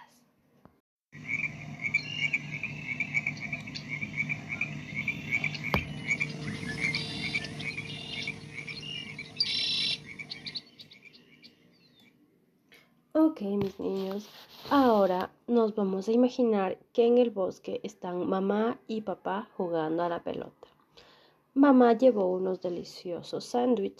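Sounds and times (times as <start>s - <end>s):
dense chorus of frogs croaking: 1.2s - 12.0s
higher chirps and trills: 1.2s - 12.1s
speech: 13.4s - 20.7s, 21.6s - 23.9s.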